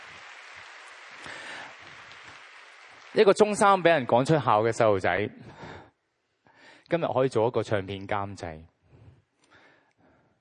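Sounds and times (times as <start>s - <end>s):
audience applause: 0.0s - 4.2s
speech: 3.1s - 5.6s, 6.9s - 8.7s.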